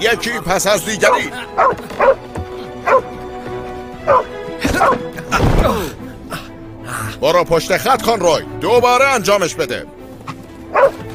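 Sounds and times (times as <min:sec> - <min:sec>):
speech: 0:00.0 - 0:03.1, 0:07.2 - 0:10.0
dog barking in short sharp bursts: 0:01.1 - 0:02.2, 0:02.8 - 0:03.1, 0:04.0 - 0:05.0, 0:10.7 - 0:11.0.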